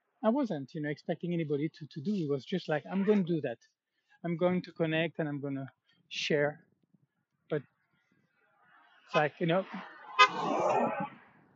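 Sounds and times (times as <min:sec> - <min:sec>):
speech: 0:00.2 - 0:06.7, 0:07.5 - 0:07.7, 0:09.1 - 0:11.2
car horn honking at a pedestrian on a narrow road: 0:10.1 - 0:10.5.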